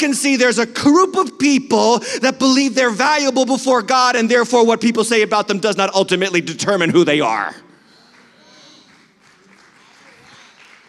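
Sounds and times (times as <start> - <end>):
speech: 0.0 - 7.6
faint crowd voices: 7.7 - 10.8
audience clapping: 8.0 - 10.8.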